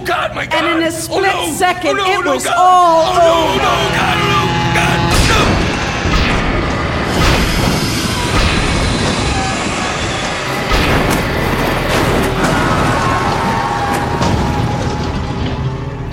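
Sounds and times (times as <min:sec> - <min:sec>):
speech: 0:00.0 - 0:05.4
train roaring past: 0:02.7 - 0:16.1
metallic bangs and crunching impacts of a train striking a stalled car: 0:03.7 - 0:16.1.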